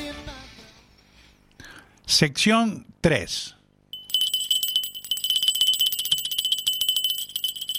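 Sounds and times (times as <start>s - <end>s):
speech: 2.1s - 3.6s
small bell ringing rapidly: 3.9s - 7.7s.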